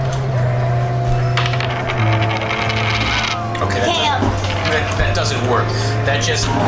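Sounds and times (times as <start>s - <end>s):
coin clattering down on a hard tabletop: 1.1s - 5.5s
coin rolling and rattling across a hard tabletop: 1.1s - 6.3s
speech: 4.7s - 6.6s.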